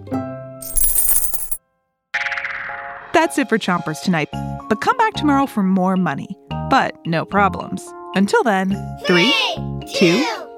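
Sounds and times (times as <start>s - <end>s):
coins dropping and jingling: 0.6s - 1.6s
speech: 3.2s - 10.4s.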